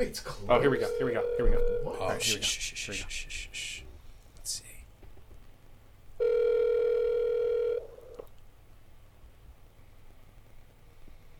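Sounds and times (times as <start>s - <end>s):
speech: 0.0s - 3.7s
faint hiss on the phone line: 0.0s - 11.3s
telephone ringback tone on an outgoing call: 0.7s - 2.0s, 6.2s - 7.9s.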